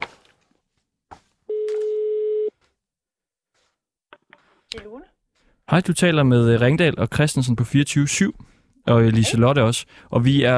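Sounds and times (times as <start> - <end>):
telephone ringing tone: 1.5 - 2.5
speech: 4.7 - 10.5.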